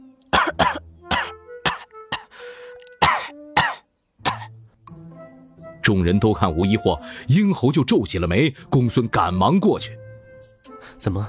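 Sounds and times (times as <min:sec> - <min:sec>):
violent coughing in an audio drama: 0:00.3 - 0:02.4, 0:03.0 - 0:04.5
speech: 0:05.9 - 0:10.0, 0:11.0 - 0:11.2.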